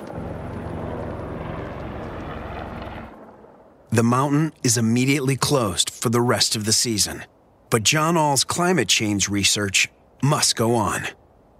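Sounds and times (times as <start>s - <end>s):
loud helicopter engine roar: 0.0s - 3.6s
helicopter rotors thumping after an avalanche: 0.0s - 4.3s
speech: 4.0s - 11.2s.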